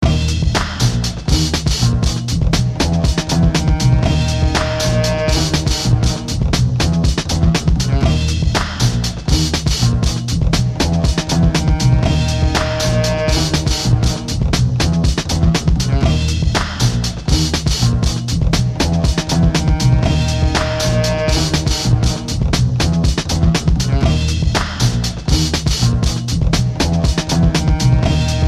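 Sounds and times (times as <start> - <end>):
beats: 0.0 - 28.4.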